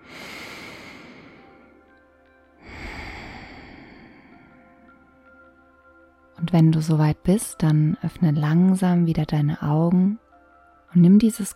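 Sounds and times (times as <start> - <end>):
deep deliberate breath into the belly: 0.0 - 2.0, 2.6 - 5.0
speech: 6.4 - 10.2, 10.9 - 11.5.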